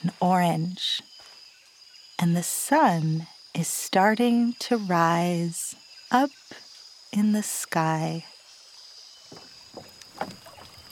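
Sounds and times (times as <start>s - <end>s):
soft constant hiss of outdoor ambience: 0.0s - 10.9s
speech: 0.1s - 1.1s, 2.2s - 6.4s, 7.1s - 8.3s, 9.3s - 10.4s
paddle strokes splashing through calm river water: 9.3s - 10.9s.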